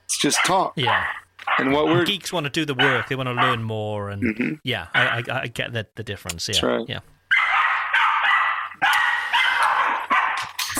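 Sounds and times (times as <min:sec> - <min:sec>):
female dog barking and yelping frantically at a door: 0:00.2 - 0:02.1, 0:02.8 - 0:03.6, 0:05.0 - 0:05.2, 0:07.3 - 0:10.6
speech: 0:00.2 - 0:07.1.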